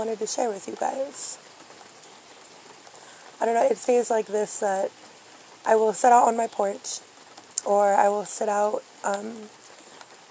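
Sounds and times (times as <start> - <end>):
speech: 0.0 - 1.6, 3.4 - 9.6
rain pattering on a hard surface: 0.0 - 10.2.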